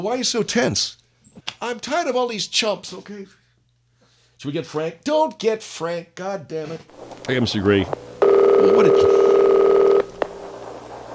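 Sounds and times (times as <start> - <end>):
speech: 0.0 - 3.4, 4.4 - 9.2
telephone dialing tones: 7.0 - 11.1.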